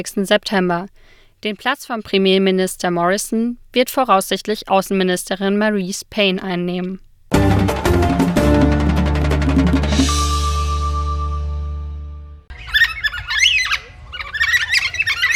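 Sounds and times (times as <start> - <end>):
speech: 0.0 - 7.8
sustained resonant musical chord: 7.3 - 12.5
Carnaby's black cockatoo squawking: 12.5 - 15.3.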